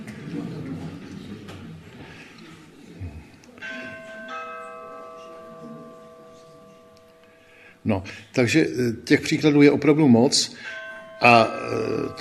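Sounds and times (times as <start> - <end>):
low murmur: 0.0 - 7.8
bells ringing outside: 3.6 - 7.8, 10.5 - 12.2
speech: 7.9 - 12.2.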